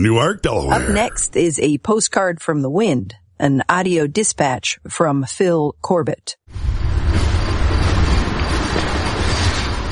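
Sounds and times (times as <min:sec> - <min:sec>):
speech: 0:00.0 - 0:07.3
train rumbling along railroad tracks at night: 0:06.5 - 0:09.8.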